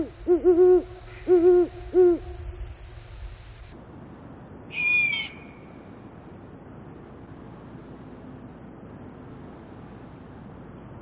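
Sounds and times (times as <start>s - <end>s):
great horned owl giving deep soft hoots and a higher drawn-out call: 0.0s - 2.5s, 4.7s - 5.7s.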